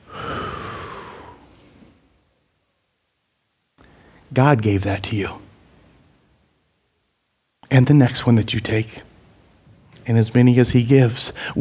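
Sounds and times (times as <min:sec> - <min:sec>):
deep breath in and out: 0:00.0 - 0:02.2, 0:03.8 - 0:04.3
speech: 0:04.3 - 0:05.4, 0:07.7 - 0:09.1, 0:10.1 - 0:11.5.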